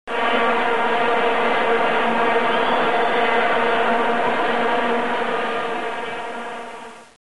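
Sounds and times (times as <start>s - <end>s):
vuvuzela: 0.1s - 7.2s.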